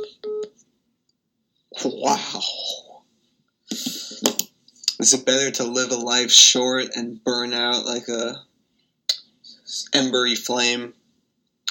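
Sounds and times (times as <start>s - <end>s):
telephone ringing with a short electronic trill: 0.0s - 0.5s
speech: 1.8s - 2.8s, 3.7s - 4.4s, 5.0s - 8.5s, 9.7s - 11.0s.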